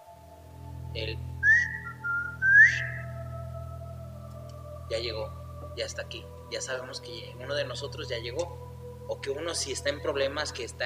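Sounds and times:
low steady hum: 0:00.0 - 0:10.8
speech: 0:01.0 - 0:01.4, 0:04.9 - 0:10.8
person whistling a two-part family signal call: 0:01.4 - 0:03.2.

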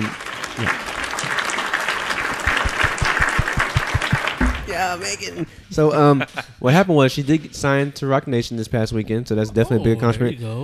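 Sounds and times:
speech: 0:00.0 - 0:00.8, 0:04.8 - 0:10.6
crowd applause sound effect from a button: 0:00.0 - 0:05.0
low thumps: 0:02.4 - 0:05.0.

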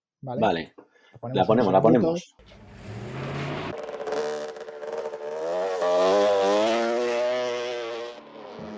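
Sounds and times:
speech: 0:00.2 - 0:02.6
passing traffic: 0:02.4 - 0:08.7
two-stroke motorcycle engine revving: 0:02.4 - 0:08.7.

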